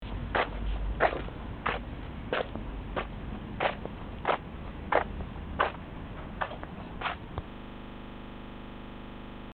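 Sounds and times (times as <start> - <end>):
footsteps walking and running: 0.0 - 7.4.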